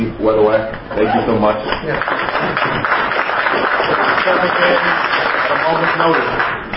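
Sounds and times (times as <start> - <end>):
speech: 0.1 - 6.6
audience at a meeting applauding: 1.8 - 6.7.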